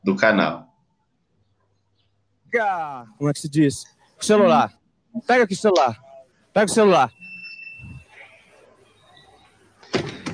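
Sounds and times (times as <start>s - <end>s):
speech: 0.0s - 0.7s, 2.5s - 6.0s, 6.6s - 7.2s
door shutting: 9.8s - 10.3s.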